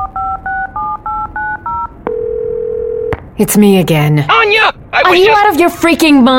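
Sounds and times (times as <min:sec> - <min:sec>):
cell phone dialing beeps of short two-note tones: 0:00.0 - 0:03.1
speech: 0:03.4 - 0:06.3.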